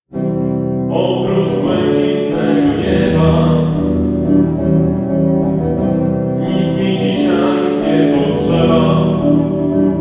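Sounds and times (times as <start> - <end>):
duet with reverb: 0.9 - 9.9.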